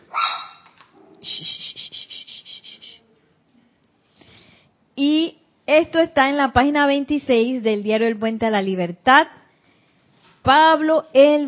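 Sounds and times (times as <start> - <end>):
dog barking: 0.1 - 0.7
speech: 1.2 - 2.0, 5.0 - 9.4, 10.4 - 11.4.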